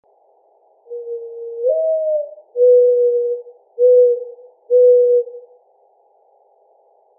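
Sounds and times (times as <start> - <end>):
Mourning Dove cooing: 0.9 - 5.5.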